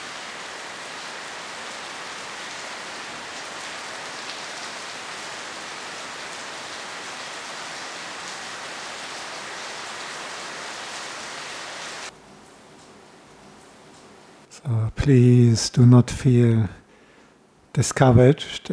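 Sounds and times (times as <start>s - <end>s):
heavy rain falling: 0.0s - 12.1s
speech: 14.6s - 16.8s, 17.8s - 18.7s.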